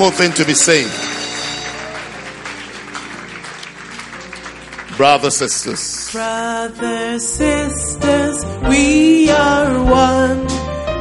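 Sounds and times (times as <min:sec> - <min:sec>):
speech: 0:00.0 - 0:01.2, 0:05.0 - 0:10.7
audience clapping for returning converts: 0:00.0 - 0:06.8.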